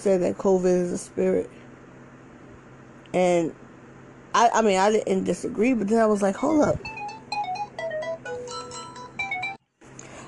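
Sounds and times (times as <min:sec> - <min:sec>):
speech: 0:00.0 - 0:01.6, 0:03.1 - 0:03.6, 0:04.3 - 0:07.0
phone ringtone of bright electronic tones from an incoming call: 0:06.8 - 0:09.6.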